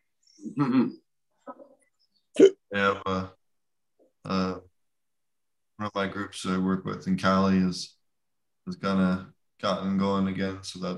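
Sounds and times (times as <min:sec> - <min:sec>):
speech: 0:00.5 - 0:01.6, 0:02.4 - 0:03.4, 0:05.8 - 0:08.0, 0:08.7 - 0:10.9
hiccup: 0:02.4 - 0:02.6
short voiced sounds: 0:02.4 - 0:03.0.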